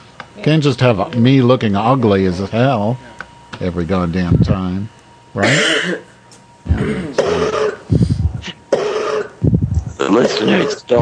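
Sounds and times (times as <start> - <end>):
speech: 0.4 - 6.1, 10.2 - 11.0
rough phlegmy throat-clearing: 5.4 - 6.1, 6.7 - 9.4
woman coughing: 5.4 - 6.1, 6.7 - 8.0, 8.7 - 9.4.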